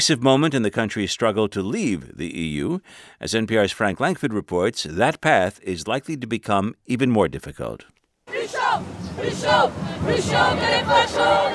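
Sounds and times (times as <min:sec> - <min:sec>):
speech: 0:00.0 - 0:11.5
large protest crowd chanting in unison: 0:08.3 - 0:11.5.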